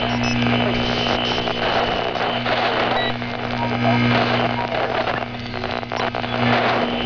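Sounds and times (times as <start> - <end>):
dead signal: 0.0 - 7.0.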